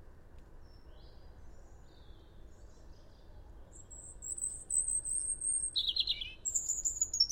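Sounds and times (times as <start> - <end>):
European robin singing, Erithacus rubecula: 3.8 - 7.2.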